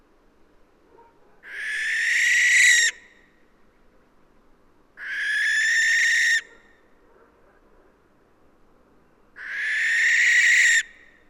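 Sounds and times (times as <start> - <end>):
Western barn owl Tyto alba giving hissing screeches: 1.4 - 3.0, 5.0 - 6.5, 9.4 - 11.0.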